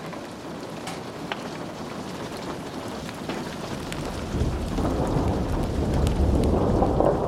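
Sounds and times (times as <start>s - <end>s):
steady rain pattering against window panes: 0.0s - 7.2s
low rumble of thunder: 2.9s - 7.2s.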